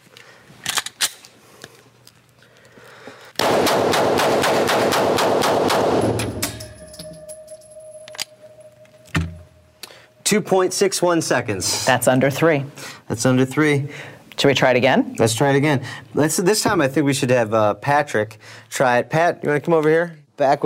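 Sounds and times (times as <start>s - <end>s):
gun firing a rapid burst during a timed firing test: 3.4s - 6.4s
faint thin tone: 6.8s - 11.1s
speech: 10.3s - 20.6s.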